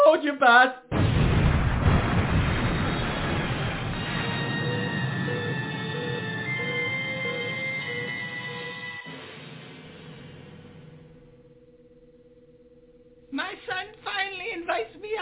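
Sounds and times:
speech: 0:00.2 - 0:00.9
explosion of waste meeting a fire in a refuse container: 0:00.9 - 0:06.5
faint steady tones: 0:02.8 - 0:15.2.

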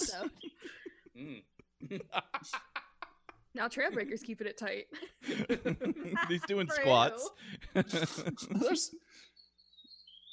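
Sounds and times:
laughter: 0:00.0 - 0:04.3, 0:04.9 - 0:09.0
speech: 0:00.2 - 0:00.8, 0:01.9 - 0:02.8, 0:03.6 - 0:09.0
bird calling outside a window with thin high chirps and whistles: 0:00.2 - 0:01.0, 0:09.1 - 0:10.3.

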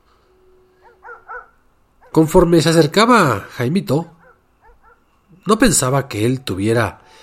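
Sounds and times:
low steady hum: 0:00.0 - 0:07.2
dog barking sharply: 0:00.8 - 0:02.3, 0:04.2 - 0:05.1
speech: 0:02.1 - 0:04.2, 0:05.4 - 0:07.2.

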